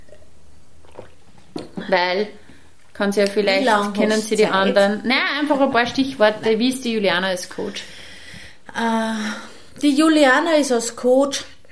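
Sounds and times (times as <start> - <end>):
faint wet mouth sound from a sip of water: 0.0 - 1.7
soft gulp of water: 0.0 - 1.8
low hiss: 0.0 - 11.7
speech: 1.9 - 2.4, 3.0 - 8.0, 8.7 - 11.5.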